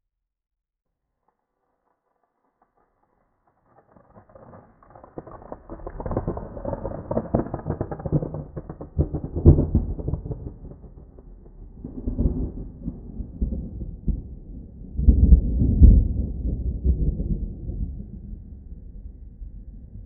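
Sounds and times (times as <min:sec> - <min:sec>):
thunder in an open field: 0:03.8 - 0:18.6.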